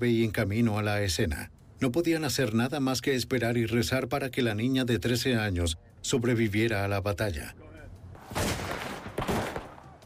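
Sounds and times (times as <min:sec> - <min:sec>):
speech: 0:00.0 - 0:07.7
gunfire bursts: 0:08.3 - 0:10.0.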